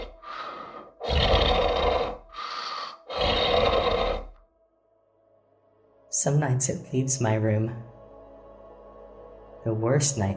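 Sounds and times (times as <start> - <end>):
heavy rasping breaths of a monstrous creature with growling rumble: 0.0 - 4.4
speech: 6.2 - 7.9, 9.7 - 10.3.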